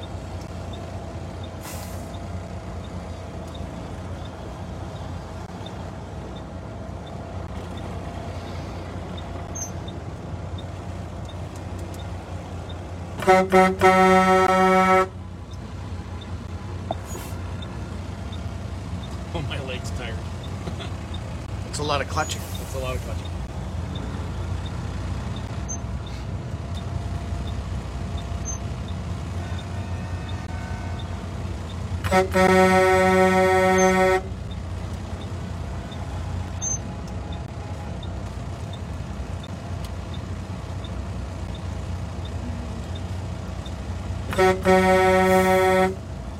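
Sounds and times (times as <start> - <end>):
engines idling: 0.0 - 46.3
road traffic rumble: 0.0 - 46.3
vehicle horn blast: 13.2 - 15.2, 32.0 - 34.4, 44.3 - 46.0
speech: 13.3 - 15.1, 32.2 - 32.6.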